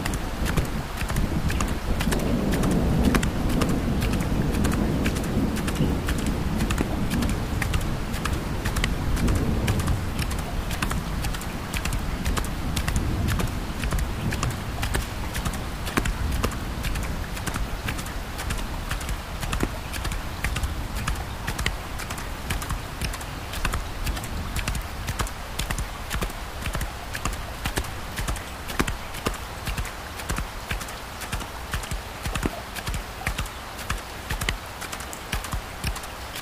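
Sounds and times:
deep rolling thunder: 0.0 - 28.9
horse hooves clopping at a walking pace: 0.0 - 36.4
light rain hiss: 0.0 - 36.4.

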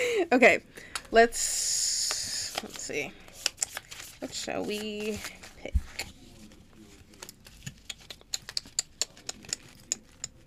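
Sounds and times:
speech: 0.2 - 1.9, 2.6 - 3.2, 4.2 - 5.8
deck of cards shuffled by hand: 2.0 - 10.2.

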